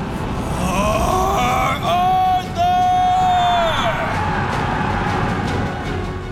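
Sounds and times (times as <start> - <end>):
large angry crowd roaring and shouting: 0.3 - 6.0
people yelling above the din: 0.4 - 5.3.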